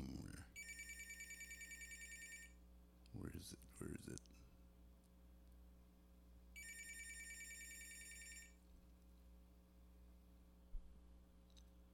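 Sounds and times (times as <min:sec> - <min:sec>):
faint low hum: 0:00.0 - 0:11.9
telephone bell ringing with a rattling trill: 0:00.6 - 0:02.6, 0:06.6 - 0:08.6
speech: 0:03.1 - 0:04.3.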